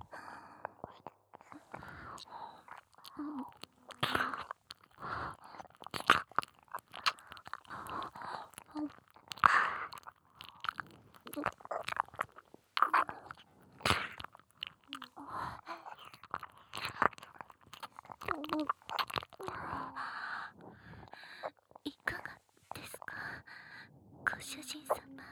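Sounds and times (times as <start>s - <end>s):
faint whispering: 0.0s - 25.3s
wet licking and mouth sounds on an ear: 0.8s - 19.9s.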